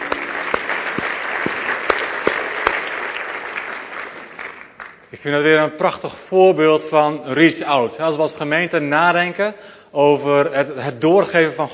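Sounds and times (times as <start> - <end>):
crowd of people clapping: 0.0 - 5.2
speech: 5.2 - 11.7.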